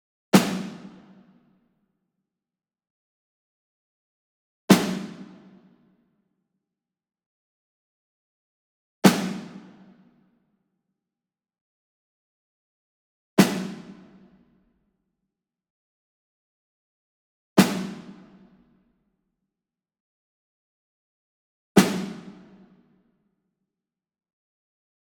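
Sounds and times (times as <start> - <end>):
Ludwig Black Beauty snare drum medium hit: 0.4 - 1.0, 4.7 - 5.3, 9.1 - 9.7, 13.4 - 14.0, 17.6 - 18.2, 21.8 - 22.4.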